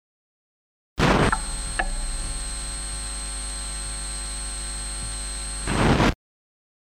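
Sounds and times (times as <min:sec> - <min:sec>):
JFET buffers noise: 0:01.0 - 0:06.0.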